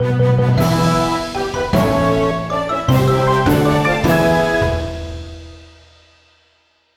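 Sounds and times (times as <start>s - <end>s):
winning jingle: 0.6s - 5.8s.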